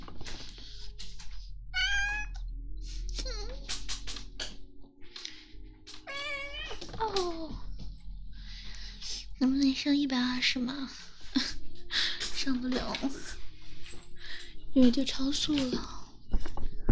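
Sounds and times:
steady low hum: 0.0 - 16.6
kitten meowing: 1.8 - 2.4, 6.1 - 6.8
speech: 9.4 - 11.1, 12.4 - 13.4, 14.8 - 16.0.

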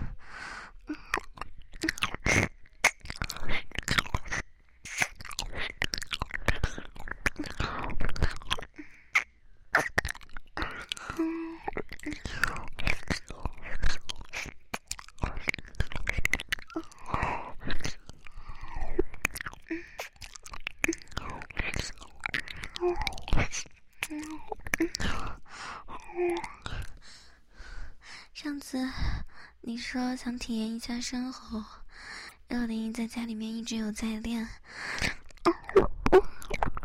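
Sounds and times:
soft mouth noises: 0.0 - 36.8
crunchy chewing of a fried chicken cutlet: 1.0 - 25.4
speech: 29.9 - 31.8, 32.6 - 34.9.

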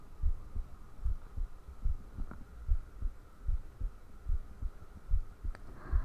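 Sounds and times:
faint low hum: 0.0 - 6.0
human heartbeat: 0.2 - 6.0.

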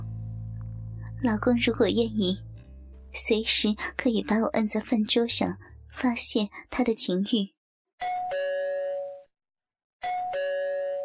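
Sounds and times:
speech: 1.2 - 2.5, 3.1 - 8.2
two-tone doorbell chiming ding-dong: 8.0 - 9.3, 10.0 - 11.0.

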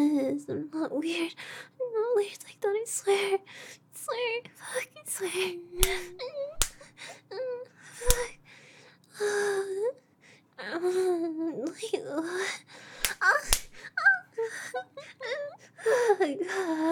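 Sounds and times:
speech: 0.4 - 8.4, 9.2 - 10.0, 10.6 - 16.9
sharp loud slaps: 5.8 - 6.8, 8.0 - 8.4, 13.0 - 13.8.

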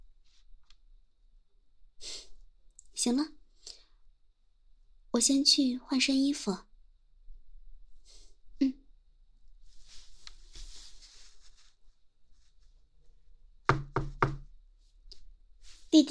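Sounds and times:
speech: 3.0 - 3.4, 5.2 - 6.7
faint rustling: 9.5 - 13.2, 14.7 - 16.0
knocking on a door: 13.7 - 14.5.

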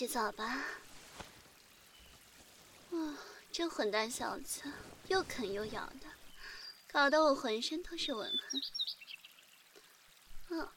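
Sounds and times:
speech: 0.0 - 0.8, 2.9 - 6.2, 6.9 - 9.0, 10.5 - 10.7
babbling stream water: 0.0 - 10.7.

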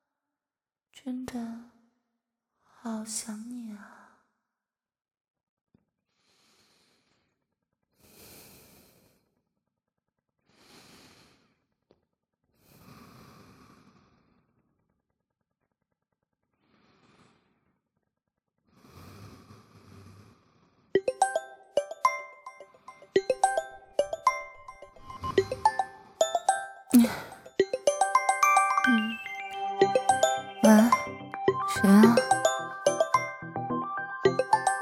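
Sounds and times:
speech: 1.0 - 1.7, 2.8 - 4.0
phone ringing with a bright melodic ringtone: 21.0 - 34.7
person breathing sharply and sniffing: 26.9 - 27.4.

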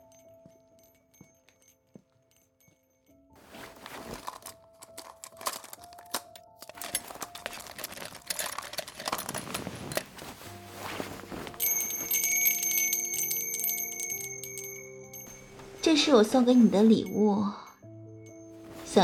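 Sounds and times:
small bell jingling and ringing: 0.0 - 3.4, 10.8 - 18.8
speech: 15.8 - 17.6.

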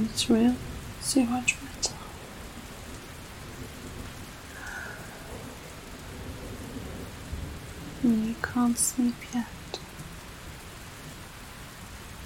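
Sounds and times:
speech: 0.0 - 2.0, 8.0 - 9.6
low rumble of thunder: 0.0 - 9.7
steady rain hissing in a thunderstorm: 0.0 - 12.2.

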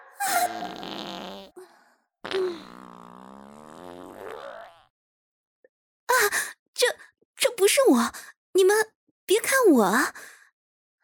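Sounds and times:
loud farts from a person with stomach pains: 0.4 - 1.5, 2.2 - 4.9
speech: 7.9 - 10.3.

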